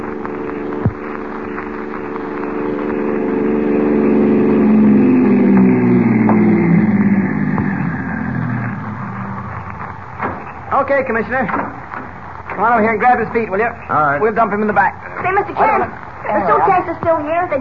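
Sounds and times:
car engine arriving and idling: 0:00.0 - 0:17.5
brief thump: 0:10.2 - 0:10.5, 0:11.5 - 0:12.2
speech: 0:10.9 - 0:11.8, 0:12.6 - 0:17.5.

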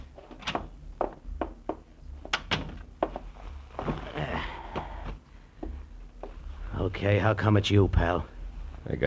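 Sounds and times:
door opening and closing: 0:00.0 - 0:01.2, 0:02.2 - 0:03.2
shuffling: 0:02.8 - 0:06.8
speech: 0:07.0 - 0:09.0.

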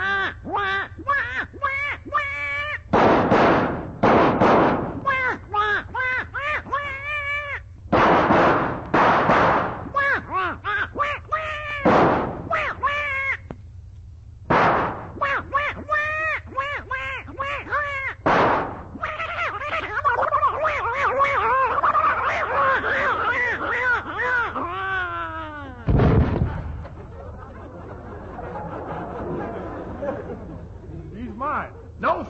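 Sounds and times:
duck quacking frantically: 0:00.0 - 0:02.9, 0:10.0 - 0:13.5, 0:15.1 - 0:18.3, 0:19.0 - 0:24.6
gunshots fired at a duck: 0:02.9 - 0:05.0, 0:07.9 - 0:09.9, 0:11.8 - 0:12.5, 0:14.5 - 0:15.2, 0:18.2 - 0:18.9, 0:25.9 - 0:26.8
laughter: 0:05.0 - 0:07.6, 0:15.3 - 0:18.2, 0:19.0 - 0:32.0.

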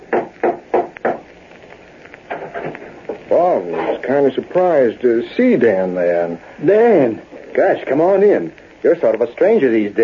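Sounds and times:
firm knocks on a door: 0:00.1 - 0:01.2
speech: 0:03.4 - 0:10.0.

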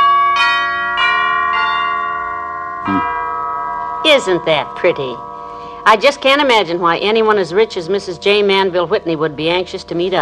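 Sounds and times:
doorbell chime at the door of a large mansion: 0:00.0 - 0:05.8
speech: 0:04.1 - 0:10.2.

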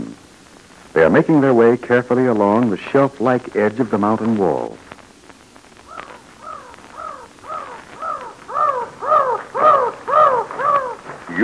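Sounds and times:
speech: 0:01.0 - 0:04.8
mountain crows cawing: 0:05.8 - 0:11.4.

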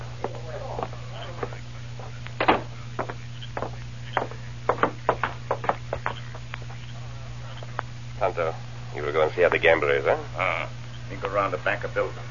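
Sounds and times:
steady low hum: 0:00.0 - 0:12.2
knocking on a door: 0:02.4 - 0:06.1
speech: 0:08.3 - 0:12.2.

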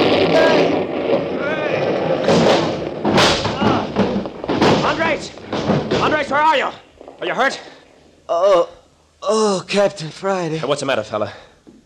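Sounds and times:
deafening explosion set off by a jerked cord: 0:00.0 - 0:07.8
crashing masonry: 0:00.0 - 0:08.2
heavy thuds from tumbling debris: 0:00.0 - 0:08.2
whole wall toppling in with a sustained rumble: 0:00.0 - 0:08.2
speech: 0:06.6 - 0:07.7, 0:08.3 - 0:11.5.

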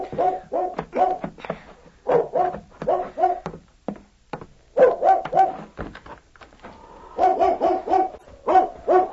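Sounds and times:
dog barking behind a shed at night: 0:00.0 - 0:01.3, 0:02.0 - 0:03.5, 0:04.8 - 0:05.7, 0:07.2 - 0:09.1.

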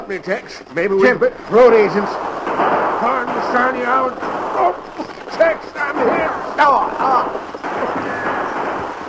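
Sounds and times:
speech: 0:00.1 - 0:07.5
gunfire in a shootout with road agents: 0:01.0 - 0:09.0.

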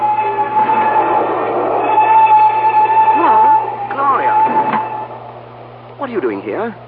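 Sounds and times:
train gaining speed rumbling along the rails: 0:00.0 - 0:06.8
speech: 0:06.1 - 0:06.8.

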